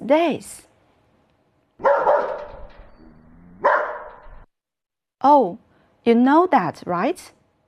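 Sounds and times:
speech: 0:00.1 - 0:00.7, 0:05.2 - 0:07.4
dog barking: 0:01.8 - 0:02.6, 0:03.6 - 0:04.3.

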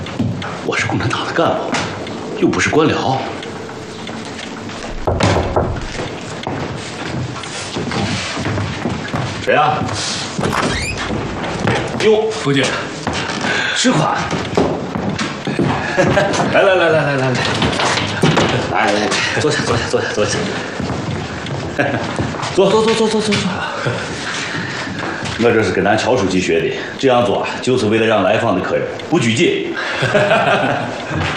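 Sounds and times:
footsteps and light shuffling: 0:00.0 - 0:16.6, 0:17.2 - 0:31.3
speech: 0:00.7 - 0:01.8, 0:02.4 - 0:03.4, 0:09.5 - 0:10.6, 0:12.0 - 0:12.9, 0:13.8 - 0:14.4, 0:16.0 - 0:17.6, 0:18.5 - 0:20.8, 0:21.8 - 0:24.3, 0:25.4 - 0:31.3
door opening with a solid thump and clatter: 0:03.4 - 0:06.6, 0:10.4 - 0:13.5
laughter: 0:15.5 - 0:20.9, 0:23.4 - 0:25.4, 0:29.6 - 0:31.3.

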